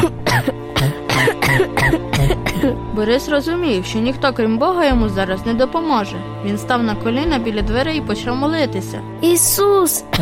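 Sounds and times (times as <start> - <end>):
person coughing from thick fire smoke: 0.0 - 2.8
speech: 3.0 - 10.2.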